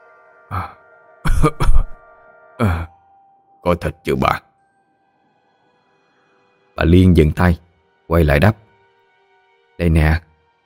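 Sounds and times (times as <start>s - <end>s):
speech: 0.5s - 0.8s, 1.4s - 1.9s, 2.6s - 2.9s, 3.7s - 4.4s, 6.8s - 8.6s, 9.8s - 10.3s
man outside coughing and clearing his throat: 0.5s - 2.0s.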